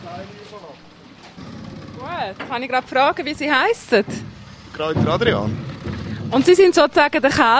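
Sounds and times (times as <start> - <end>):
small boat low engine rumble on a lake: 0.0 - 7.5
water noise from a small boat on a lake: 0.0 - 7.5
speech: 2.2 - 5.7, 6.3 - 7.5.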